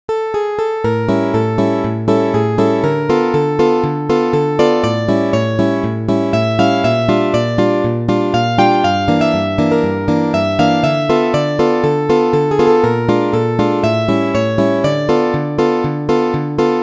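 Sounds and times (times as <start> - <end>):
main melody: 0.3 - 16.8.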